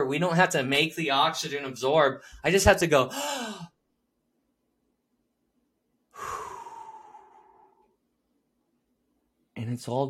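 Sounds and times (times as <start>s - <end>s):
speech: 0.1s - 3.7s, 9.6s - 10.0s
person breathing in: 3.1s - 3.8s, 6.1s - 7.9s.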